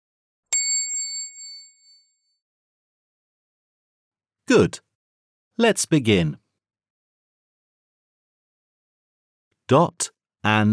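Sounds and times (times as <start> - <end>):
bell chime signalling a page turn in a children's read-along book: 0.6 - 2.0
speech: 4.5 - 4.8, 5.6 - 6.4, 9.7 - 10.7.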